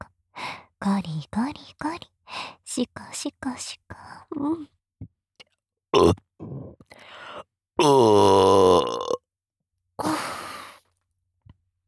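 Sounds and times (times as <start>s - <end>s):
speech: 0.8s - 5.1s, 6.0s - 7.2s, 7.8s - 9.0s
throaty burps: 6.0s - 6.9s, 7.8s - 9.2s.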